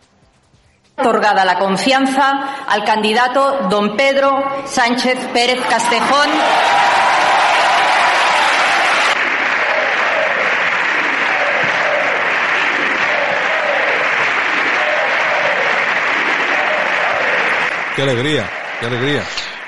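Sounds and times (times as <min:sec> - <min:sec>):
speech: 0:01.0 - 0:06.9, 0:18.0 - 0:19.5
loud sustained applause in a parliament chamber: 0:05.5 - 0:19.6
crowd of voices rhythmically chanting: 0:05.6 - 0:19.6.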